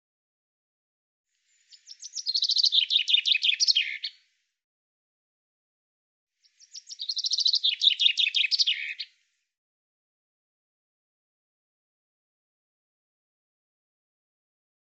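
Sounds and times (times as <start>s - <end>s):
common chaffinch song: 1.4s - 4.4s, 6.4s - 9.3s.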